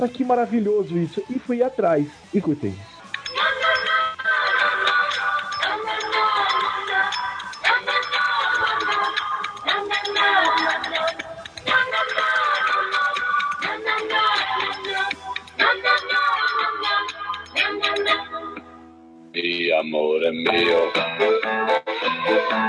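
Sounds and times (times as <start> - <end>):
speech: 0.0 - 2.9, 19.4 - 22.6
song with repetitive sung chorus over bright instrumentation: 2.1 - 18.8, 19.8 - 22.6.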